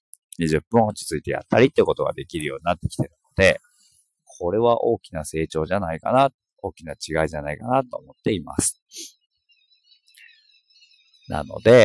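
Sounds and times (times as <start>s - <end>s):
birdsong outdoors: 0.3s - 11.8s
speech: 0.4s - 3.7s, 4.3s - 9.2s, 11.3s - 11.8s.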